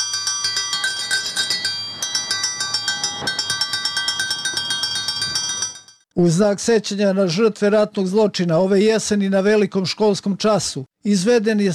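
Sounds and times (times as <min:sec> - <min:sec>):
school bell ringing with rapid metallic strikes: 0:00.0 - 0:06.0
speech: 0:06.2 - 0:11.7.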